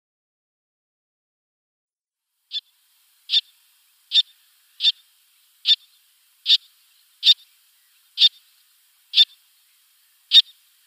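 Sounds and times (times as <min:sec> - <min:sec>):
little tern calling: 0:02.5 - 0:10.8.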